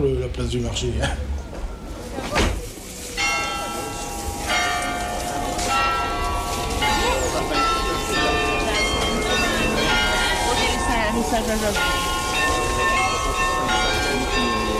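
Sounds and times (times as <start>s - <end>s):
outdoor city noise: 0.0s - 14.7s
speech: 0.3s - 1.4s, 11.3s - 12.1s
belfry carillon bells chiming: 3.1s - 14.7s.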